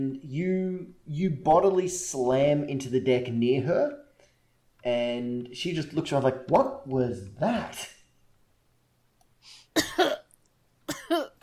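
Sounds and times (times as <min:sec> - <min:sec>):
speech: 0:00.0 - 0:04.0, 0:04.8 - 0:08.0
person coughing hard, raspy and winded: 0:09.7 - 0:10.3, 0:10.9 - 0:11.4.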